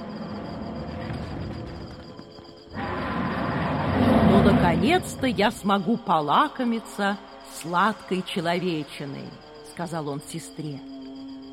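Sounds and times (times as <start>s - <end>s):
monster roaring: 2.8s - 5.2s
speech: 4.7s - 10.9s.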